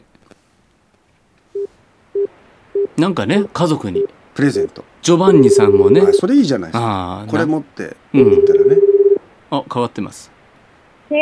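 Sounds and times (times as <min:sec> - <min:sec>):
telephone tones of a call being placed: 0:01.6 - 0:03.0, 0:05.3 - 0:06.3, 0:08.2 - 0:09.2
speech: 0:03.0 - 0:08.8, 0:09.5 - 0:10.4.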